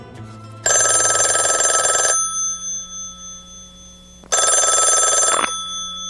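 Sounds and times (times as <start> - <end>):
telephone bell ringing in a country song: 0.6 - 6.0.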